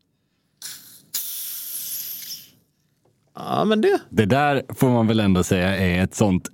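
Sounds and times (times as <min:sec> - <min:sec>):
champagne bottle with a fairly narrow cork opened with gas hiss: 0:00.6 - 0:02.7
speech: 0:03.4 - 0:06.5.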